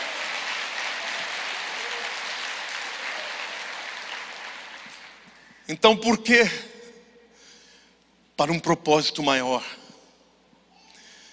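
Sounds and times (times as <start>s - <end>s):
audience applauding: 0.0s - 5.5s
speech: 5.7s - 6.7s, 8.4s - 9.8s.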